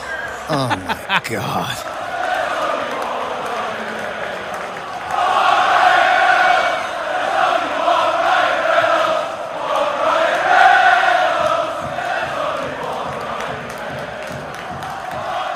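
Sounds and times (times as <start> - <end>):
large football stadium crowd chanting in unison: 0.0 - 15.5
laughter: 0.5 - 1.8
speech: 0.5 - 2.0.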